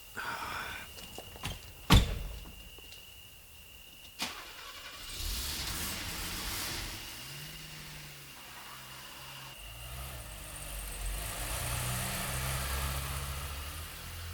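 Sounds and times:
road noise: 0.0s - 14.3s
car engine cranking and starting: 3.8s - 14.3s.

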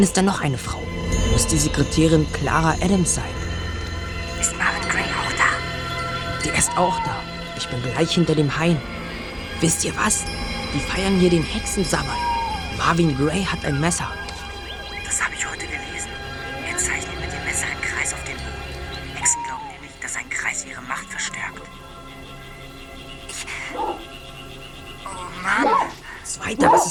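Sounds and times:
speech: 0.0s - 3.4s, 6.4s - 9.0s, 9.6s - 14.2s
low rumbling background: 0.0s - 26.7s
large dog barking: 23.7s - 24.0s, 25.6s - 26.0s, 26.6s - 26.8s
large dog whining whimpers: 23.7s - 24.0s, 25.1s - 26.0s, 26.6s - 26.8s.

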